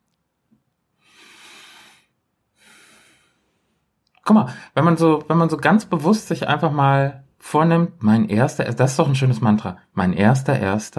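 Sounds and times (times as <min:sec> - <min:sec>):
deep breath taken together, inhale and exhale: 0:01.0 - 0:03.9
speech: 0:04.3 - 0:10.9.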